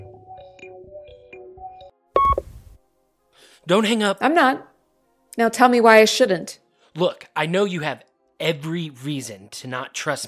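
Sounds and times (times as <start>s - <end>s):
mobile phone ringing with simple electronic melody: 2.2s - 2.5s
speech: 3.6s - 4.7s, 5.4s - 10.2s.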